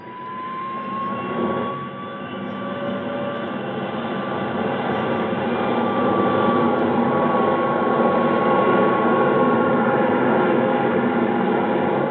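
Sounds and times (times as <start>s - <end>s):
thin whining tone of military jet engine: 0.0s - 11.4s
military jet aircraft engine roar taking off: 0.0s - 12.0s.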